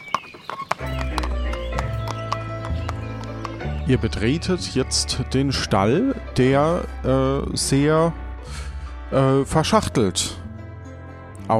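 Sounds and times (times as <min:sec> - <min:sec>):
hooves clopping on a hard floor in a stable: 0:00.0 - 0:04.8
speech: 0:03.9 - 0:10.4.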